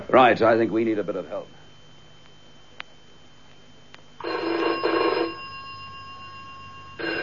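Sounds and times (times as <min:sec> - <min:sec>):
speech: 0:00.1 - 0:01.6
telephone bell ringing: 0:04.2 - 0:07.2.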